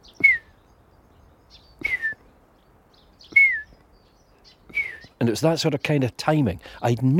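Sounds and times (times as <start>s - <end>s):
voice imitating a night bird's call with whistled notes: 0.2s - 0.5s, 1.8s - 2.2s, 3.3s - 3.8s, 4.7s - 5.2s
speech: 5.2s - 7.1s.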